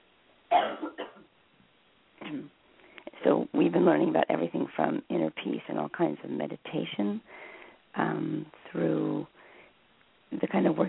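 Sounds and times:
person clearing throat: 0.5s - 1.2s, 2.2s - 2.5s
speech: 0.5s - 1.2s, 2.3s - 2.6s, 3.2s - 9.4s, 10.3s - 10.8s.

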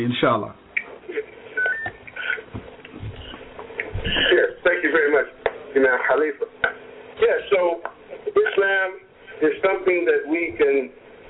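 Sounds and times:
speech: 0.0s - 0.6s, 4.0s - 11.0s
touch-tone keypad beeps on a conference phone line: 1.6s - 2.0s.

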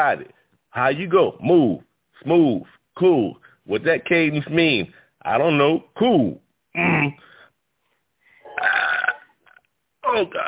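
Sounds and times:
speech: 0.0s - 7.3s, 10.1s - 10.4s
loud rough gravelly burp: 8.5s - 9.6s, 10.2s - 10.4s.

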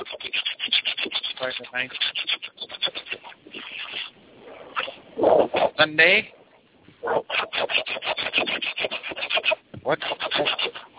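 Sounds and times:
hand saw cutting through a wooden board: 0.0s - 4.1s, 7.3s - 10.9s
speech: 1.4s - 2.2s, 5.8s - 6.4s, 9.9s - 10.1s.

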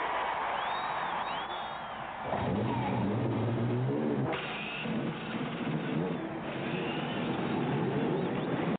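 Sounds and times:
noisy crowd at the Indianapolis Motor Speedway: 0.0s - 8.7s
race car engines starting and revving at the Indianapolis Motor Speedway: 2.2s - 8.7s.

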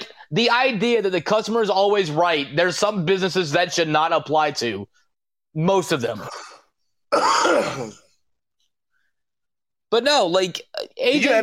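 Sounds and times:
speech: 0.3s - 6.5s, 7.1s - 8.0s, 9.9s - 11.4s
rough raspy throat-clearing cough: 6.2s - 8.2s.

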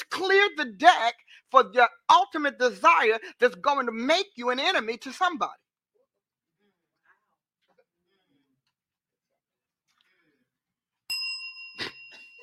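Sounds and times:
speech: 0.2s - 5.6s
bell struck with bright metallic tone: 11.1s - 12.4s.

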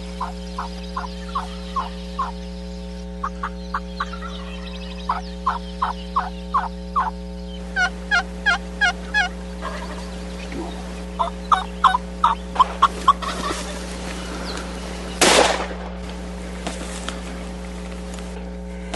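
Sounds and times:
wild turkey gobbling during a hunt in Hawaii at about 7,000 feet: 0.0s - 15.4s
low steady hum: 0.0s - 18.9s
one sharp loud blast: 15.2s - 16.0s.

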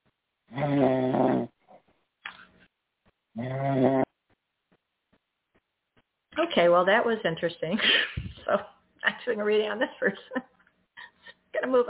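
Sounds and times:
caller snoring over a muffled phone line: 0.5s - 1.6s, 3.4s - 4.1s
speech: 6.6s - 8.7s, 9.3s - 10.4s, 11.7s - 11.8s.

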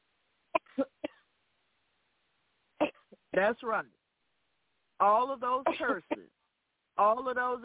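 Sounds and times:
forced coughs: 2.8s - 3.2s, 5.7s - 6.3s
speech: 3.4s - 4.0s, 5.0s - 6.4s, 7.0s - 7.6s.

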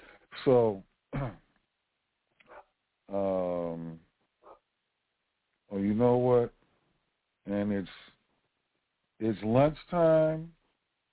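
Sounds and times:
speech: 0.4s - 1.4s, 5.7s - 6.6s, 7.5s - 8.0s, 9.2s - 10.6s
dog barking and whining in the background: 2.5s - 2.7s.

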